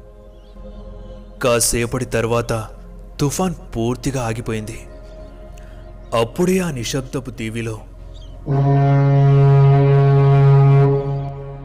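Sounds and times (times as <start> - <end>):
speech: 1.4 - 4.9, 6.1 - 8.8
ship's horn blast from the sea near a quiet island after a storm: 8.4 - 11.6.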